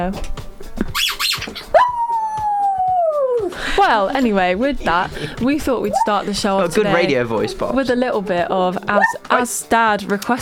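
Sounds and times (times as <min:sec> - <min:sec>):
speech: 0:00.0 - 0:00.4, 0:03.8 - 0:10.4
short sharp yelps or noisy bursts: 0:01.0 - 0:02.7
dog howling: 0:01.6 - 0:03.5, 0:05.6 - 0:09.6.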